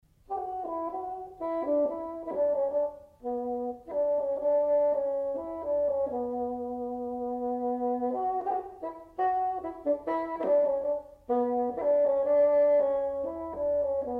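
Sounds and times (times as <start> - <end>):
bassoon: 0.2 - 14.1.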